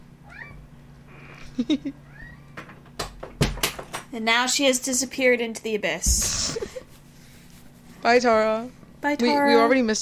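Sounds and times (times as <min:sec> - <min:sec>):
cat meowing: 0:00.2 - 0:00.6
speech: 0:01.6 - 0:02.1, 0:04.1 - 0:06.6, 0:08.0 - 0:10.0.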